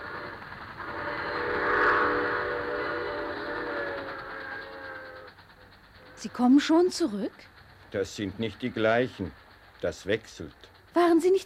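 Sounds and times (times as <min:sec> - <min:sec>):
steam locomotive whistle: 0:00.0 - 0:05.4
low rail rumble: 0:00.0 - 0:11.4
speech: 0:06.2 - 0:11.4.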